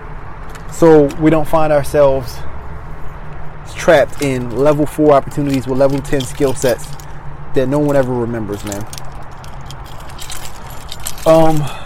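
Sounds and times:
speech: 0.7s - 2.5s, 3.9s - 7.0s, 7.6s - 9.1s, 11.2s - 11.8s
keys jingling while opening a door: 3.7s - 11.8s.

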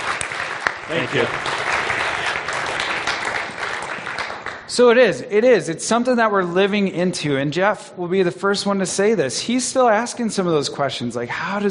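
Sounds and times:
audience clapping at a community gathering: 0.0s - 5.0s
speech: 0.9s - 1.6s, 4.8s - 11.6s.

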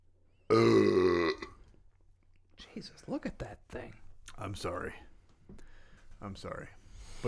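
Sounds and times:
person burping: 0.5s - 1.6s
speech: 2.8s - 7.2s.

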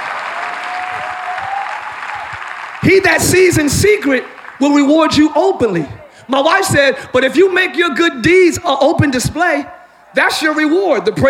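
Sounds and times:
audience clapping: 0.0s - 6.1s
speech: 2.8s - 11.2s.

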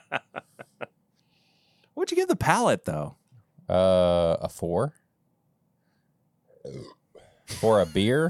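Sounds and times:
speech: 2.3s - 5.0s, 7.6s - 8.2s
person burping after drinking beer: 6.6s - 8.2s.

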